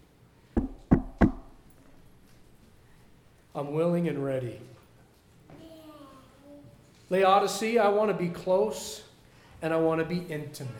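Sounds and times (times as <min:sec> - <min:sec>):
knocking on a wooden door: 0:00.6 - 0:01.6
speech: 0:03.6 - 0:04.8, 0:07.1 - 0:10.7.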